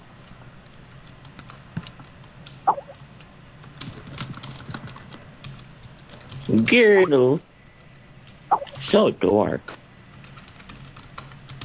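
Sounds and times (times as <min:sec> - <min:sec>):
typing on a computer keyboard: 0:00.9 - 0:07.1, 0:10.1 - 0:11.6
speech: 0:06.6 - 0:07.5, 0:08.9 - 0:09.8.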